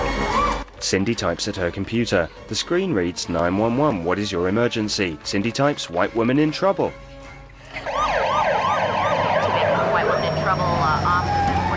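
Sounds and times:
speech: 0.8s - 7.1s
several overlapping police sirens wailing and yelping: 7.7s - 11.7s
police car engine rumble: 8.9s - 11.7s.

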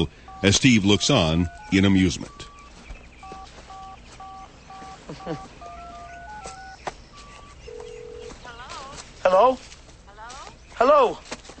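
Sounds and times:
speech: 0.0s - 2.5s, 5.3s - 5.5s, 9.3s - 9.7s, 10.8s - 11.3s
cell phone keypad tones as a number is dialed: 0.0s - 8.4s.

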